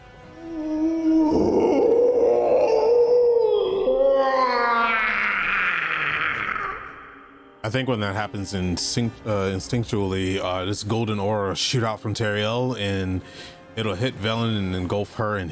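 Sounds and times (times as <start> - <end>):
monstrous howl: 0.3 - 7.5
speech: 7.7 - 15.5.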